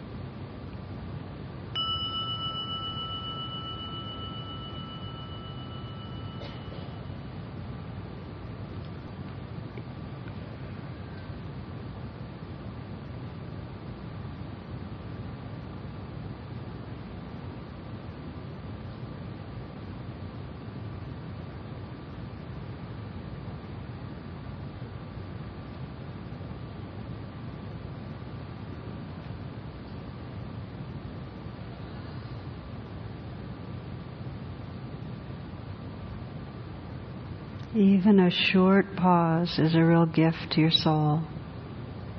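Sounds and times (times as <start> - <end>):
gong struck and ringing out: 1.8 - 7.2
speech: 37.8 - 41.4.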